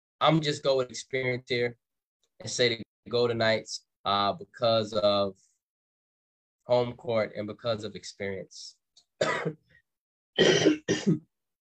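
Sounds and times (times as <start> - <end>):
speech: 0.2 - 1.8, 2.4 - 5.5, 6.7 - 9.6, 10.4 - 11.3
raspy coughs: 9.2 - 9.7, 10.4 - 11.3.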